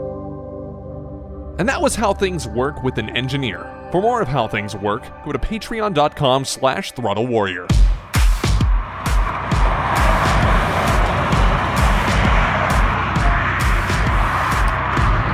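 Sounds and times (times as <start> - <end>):
speech: 1.6 - 7.8
car engine roaring: 8.0 - 15.3.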